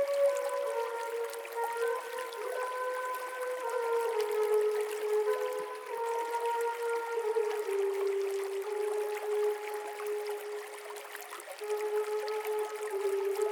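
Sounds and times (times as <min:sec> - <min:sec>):
flutes playing long held notes: 0:00.0 - 0:13.5
gentle running stream: 0:00.0 - 0:13.5.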